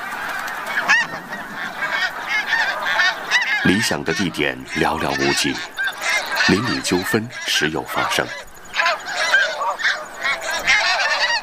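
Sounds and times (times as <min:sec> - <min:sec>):
flock of snow geese honking at their Arctic breeding ground during nesting season: 0:00.0 - 0:11.4
speech: 0:03.7 - 0:05.8, 0:06.4 - 0:08.5.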